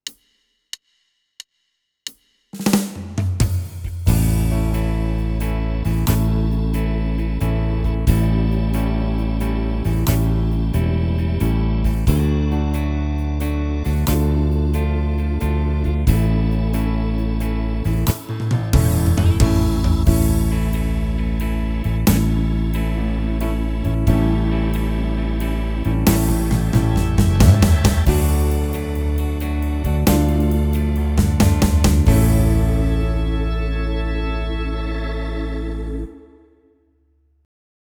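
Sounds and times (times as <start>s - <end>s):
rhythm and blues gospel music on a Yamaha Tyros3 keyboard: 3.8s - 36.2s.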